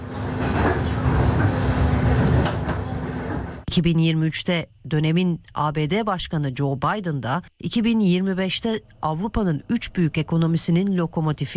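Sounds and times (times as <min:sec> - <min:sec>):
passenger train in Ukraine rolling along rails: 0:00.0 - 0:03.6
speech: 0:03.7 - 0:11.5.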